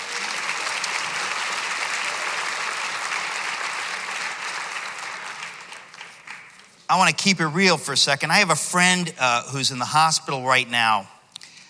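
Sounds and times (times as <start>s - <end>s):
crowd of many hands clapping: 0.0s - 6.9s
speech: 6.9s - 11.2s.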